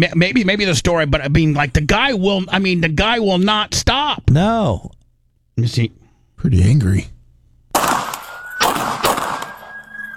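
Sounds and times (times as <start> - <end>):
speech: 0.0 - 5.0, 5.6 - 7.2
pistol gunshots: 7.7 - 10.1
steady high-pitched whine: 8.2 - 10.1.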